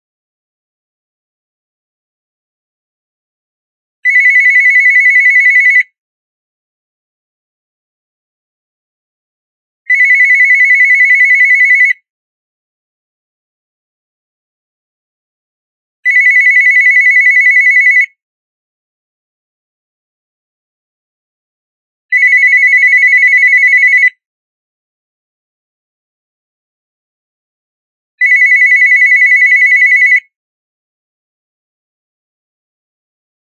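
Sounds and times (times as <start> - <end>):
telephone: 4.1 - 6.0, 9.9 - 12.0, 16.1 - 18.2, 22.1 - 24.2, 28.2 - 30.3.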